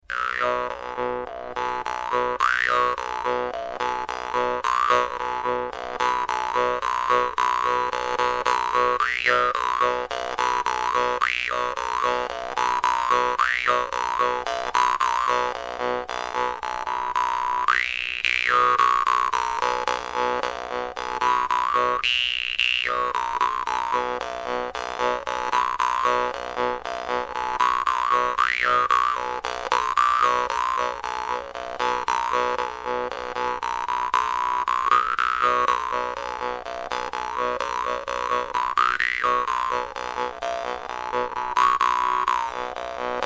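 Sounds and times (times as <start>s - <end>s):
jaw harp: 0.1s - 43.2s.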